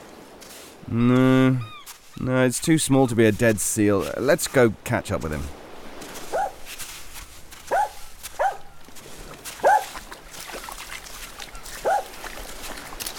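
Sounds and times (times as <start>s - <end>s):
speech: 0.9s - 5.6s
dog barking excitedly: 6.3s - 6.6s, 7.7s - 8.7s, 9.6s - 10.0s, 11.8s - 12.1s.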